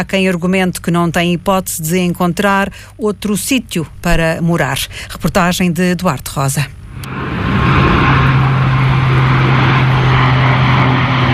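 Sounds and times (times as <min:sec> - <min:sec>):
speech: 0:00.0 - 0:07.5
loud steady engine roar with low droning hum: 0:06.8 - 0:11.3.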